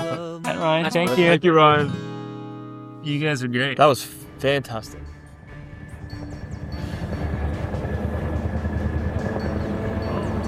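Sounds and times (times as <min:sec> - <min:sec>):
speech: 0:00.1 - 0:02.0, 0:03.0 - 0:05.2
helicopter with rumbling engine and rotor chop flying overhead: 0:05.4 - 0:10.4.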